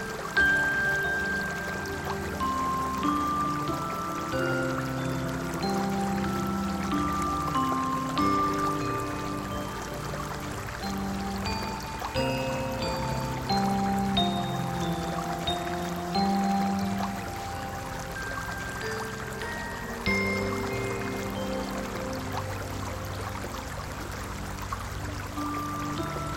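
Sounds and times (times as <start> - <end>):
forest river stream flowing under a bridge: 0.0 - 26.3.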